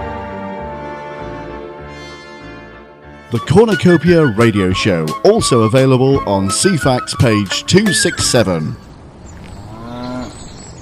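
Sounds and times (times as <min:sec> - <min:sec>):
speech: 0:03.3 - 0:08.9
cow mooing: 0:09.6 - 0:10.4.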